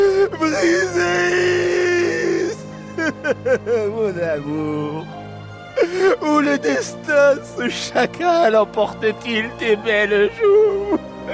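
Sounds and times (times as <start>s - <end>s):
laughter: 0.0s - 5.0s, 10.6s - 11.3s
man groaning and crying out in pain: 0.0s - 5.0s, 5.8s - 7.5s
speech: 3.4s - 5.2s, 5.8s - 11.3s.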